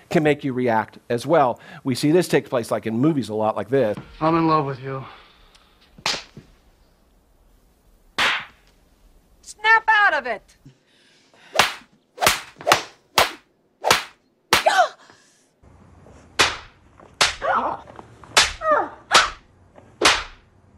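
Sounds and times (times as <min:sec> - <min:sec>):
speech: 0:00.1 - 0:05.2, 0:09.5 - 0:10.8
loud sharp slaps to the face: 0:06.0 - 0:06.4, 0:08.2 - 0:08.6, 0:11.6 - 0:14.8, 0:16.4 - 0:17.4, 0:18.4 - 0:19.4, 0:20.0 - 0:20.5.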